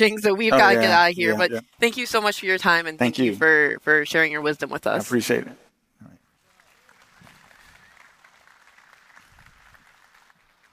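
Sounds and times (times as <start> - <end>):
speech: 0.0 - 6.1
audience applauding speakers after a discussion: 6.4 - 10.7.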